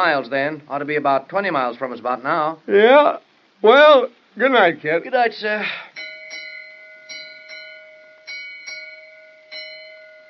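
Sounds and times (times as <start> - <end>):
speech: 0.0 - 5.9
ship's lookout bell sounding a warning: 6.0 - 10.2.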